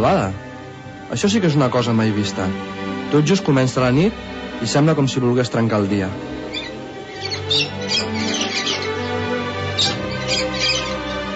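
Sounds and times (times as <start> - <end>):
speech: 0.0 - 0.4, 1.1 - 6.3, 7.5 - 7.8
birds singing and chirping: 6.4 - 11.3.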